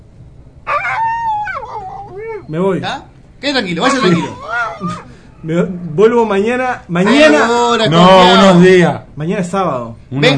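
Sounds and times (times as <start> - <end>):
low rumble: 0.0 - 10.3
dog howling: 0.7 - 2.6, 3.8 - 5.1
speech: 2.5 - 10.3.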